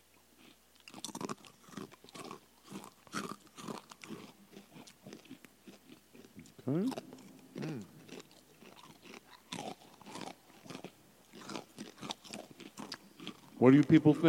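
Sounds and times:
crunching and chewing of crisp food into the microphone: 0:00.0 - 0:14.2
person murmuring: 0:06.6 - 0:07.0, 0:07.6 - 0:08.0
speech: 0:06.7 - 0:07.1, 0:13.6 - 0:14.2
person humming: 0:07.6 - 0:08.0.

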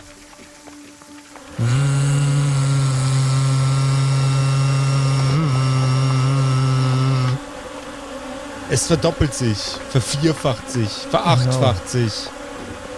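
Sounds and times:
loud wasp-like buzzing drone: 0:00.0 - 0:12.9
speech: 0:08.8 - 0:12.4.

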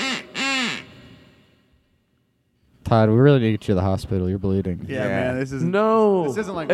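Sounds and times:
blown duck whistle quacking: 0:00.0 - 0:01.6
speech: 0:02.9 - 0:06.7.

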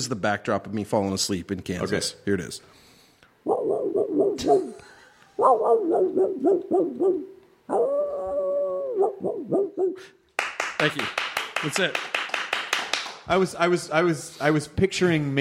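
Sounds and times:
speech: 0:00.0 - 0:02.8, 0:04.4 - 0:04.8, 0:05.4 - 0:08.1, 0:09.0 - 0:10.2, 0:10.8 - 0:12.1, 0:13.3 - 0:15.4
hound baying: 0:03.4 - 0:10.1.

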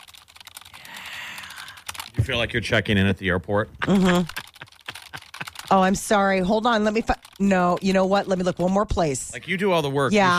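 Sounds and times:
typing on a computer keyboard: 0:00.0 - 0:02.2, 0:03.9 - 0:09.0
speech: 0:02.2 - 0:04.4, 0:05.7 - 0:10.3
laughter: 0:03.0 - 0:06.4.

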